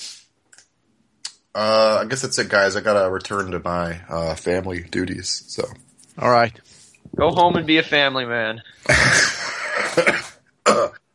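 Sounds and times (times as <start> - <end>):
speech: 1.5 - 9.3
breathy laugh: 8.8 - 10.4
rough cough: 8.9 - 11.0.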